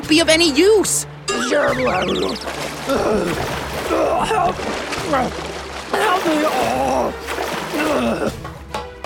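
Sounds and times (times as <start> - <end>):
speech: 0.1 - 8.4
excited strained voices crying out: 1.3 - 4.6
rough seawater churning and splashing: 1.6 - 8.5.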